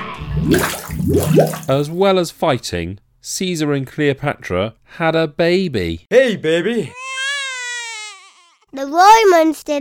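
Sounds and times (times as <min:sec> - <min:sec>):
deep bubbling gurgle of water as a man drowns: 0:00.2 - 0:02.0
rushing churning river water: 0:00.4 - 0:01.9
speech: 0:00.4 - 0:07.0, 0:08.7 - 0:09.8.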